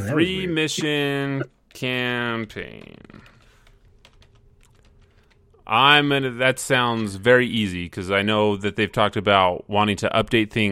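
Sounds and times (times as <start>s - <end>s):
speech: 0.0s - 3.2s, 5.7s - 10.6s
typing on a computer keyboard: 2.6s - 5.6s.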